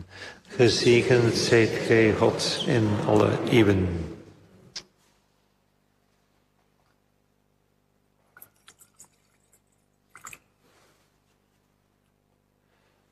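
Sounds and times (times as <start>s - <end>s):
speech: 0.3s - 4.2s
water poured into wine in a chalice: 8.3s - 10.6s.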